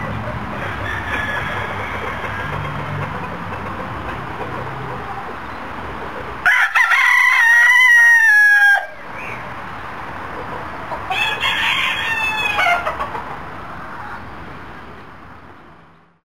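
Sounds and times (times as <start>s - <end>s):
rooster crowing: 0.5s - 2.9s, 6.4s - 9.0s, 11.1s - 12.9s.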